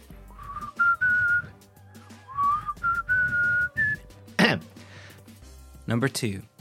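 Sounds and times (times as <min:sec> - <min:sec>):
person whistling a short tune: 0:00.3 - 0:01.6, 0:02.3 - 0:04.1
speech: 0:05.9 - 0:06.5.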